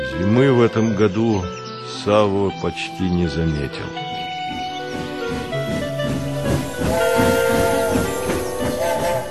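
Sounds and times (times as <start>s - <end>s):
speech: 0.2s - 4.2s
steam locomotive wheels clattering on rails: 3.0s - 9.2s
steam locomotive long husky whistle: 6.6s - 9.2s.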